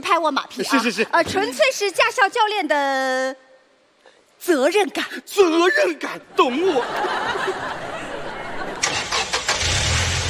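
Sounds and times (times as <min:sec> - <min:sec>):
speech: 0:00.0 - 0:03.4, 0:04.4 - 0:07.8
laughter: 0:06.3 - 0:09.1
car engine starting during a driving lesson: 0:08.8 - 0:10.2.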